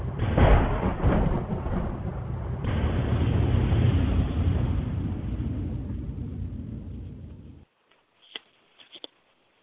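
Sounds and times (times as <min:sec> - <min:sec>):
loud deep rolling rumble of thunder: 0:00.0 - 0:07.7.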